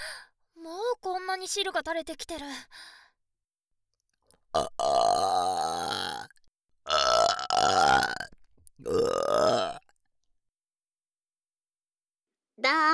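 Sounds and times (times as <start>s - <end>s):
speech: 1.4s - 3.0s, 4.5s - 5.8s, 12.6s - 12.9s
person burping: 4.6s - 6.3s, 6.9s - 9.9s.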